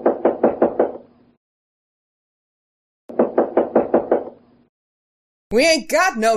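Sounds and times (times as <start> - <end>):
firm knocking on a door: 0.0 - 1.0, 3.1 - 4.4
speech: 5.5 - 6.3.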